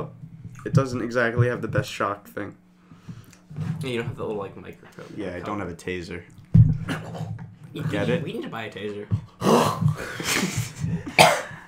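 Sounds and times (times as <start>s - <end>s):
speech: 0.6s - 2.6s, 3.6s - 11.3s
person coughing while eating rice: 10.4s - 11.6s
throat-clearing hack: 11.1s - 11.6s.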